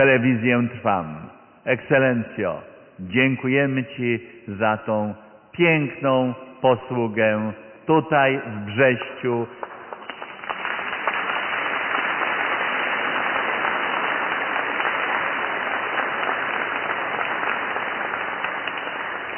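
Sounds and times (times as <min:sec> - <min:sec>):
speech: 0:00.0 - 0:09.6
large crowd applauding in a reverberant church: 0:09.6 - 0:19.3.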